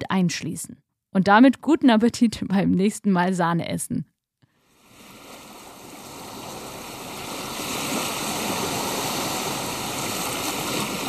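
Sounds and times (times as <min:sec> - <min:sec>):
speech: 0:00.1 - 0:04.1
sea waves rushing: 0:04.7 - 0:11.0.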